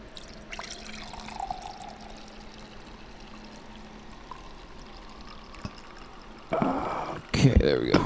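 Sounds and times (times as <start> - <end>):
mead pouring from a bottle into a cup: 0.0 - 7.4
small drips and clinks: 0.1 - 6.6
speech: 7.4 - 8.0.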